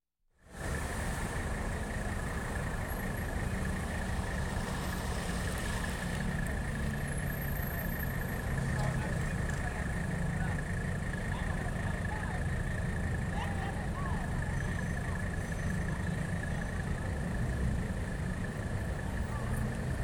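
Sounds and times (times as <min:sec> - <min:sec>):
city main street traffic ambience: 0:00.4 - 0:20.0.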